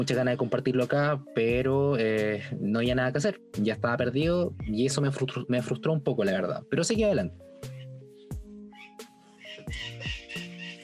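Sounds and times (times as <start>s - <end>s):
speech: 0.0s - 7.7s
bird squawking and chattering: 7.6s - 10.8s.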